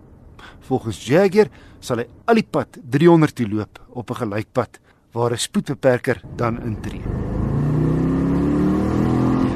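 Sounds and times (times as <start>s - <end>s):
speech: 0.5s - 7.2s
supercharged car engine accelerating through the gears: 6.8s - 9.5s.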